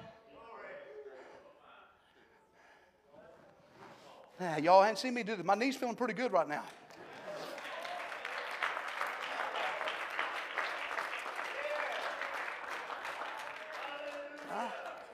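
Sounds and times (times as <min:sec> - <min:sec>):
speech: 0:04.4 - 0:06.8
crowd clapping: 0:06.9 - 0:15.1.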